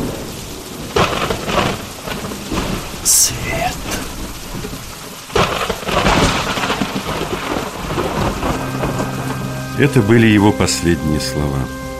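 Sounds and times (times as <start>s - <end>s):
sharp crack of thunder rumbling: 0.0s - 3.1s, 4.0s - 9.4s
steady heavy rain: 0.0s - 11.9s
speech: 3.1s - 4.8s, 9.8s - 11.8s.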